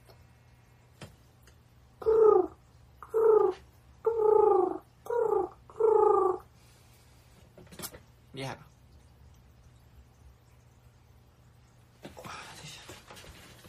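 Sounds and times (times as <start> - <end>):
person imitating pigeon cooing: 2.0 - 6.5.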